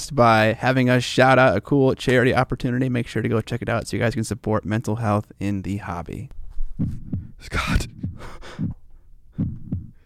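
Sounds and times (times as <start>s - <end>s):
speech: 0.0s - 8.8s
low thudding heartbeat pulses: 6.6s - 10.0s.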